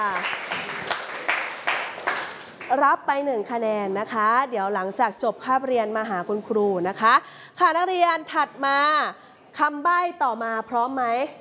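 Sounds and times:
class of students applauding a classmate: 0.0s - 2.8s
speech: 2.8s - 11.4s.

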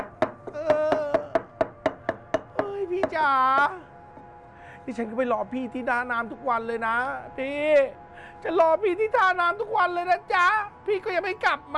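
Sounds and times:
pestle pounding chili paste in a mortar: 0.0s - 3.7s
speech: 3.1s - 3.9s, 4.8s - 11.7s.

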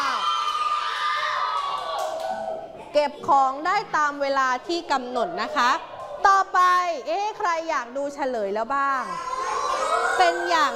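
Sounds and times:
class of children cheering and whooping: 0.0s - 2.8s, 9.2s - 10.7s
speech: 2.9s - 9.3s, 10.2s - 10.7s.

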